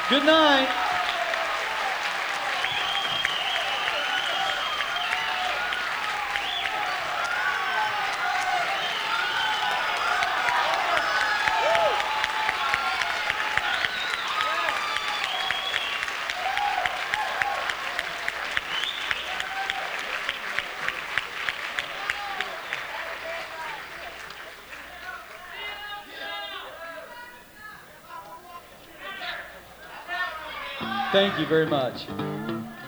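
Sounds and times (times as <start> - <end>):
cheers, whoops and shouts from a live audience: 0.0 - 17.8
small live audience clapping: 0.0 - 26.0, 30.8 - 32.8
speech: 0.1 - 0.9, 31.2 - 32.4.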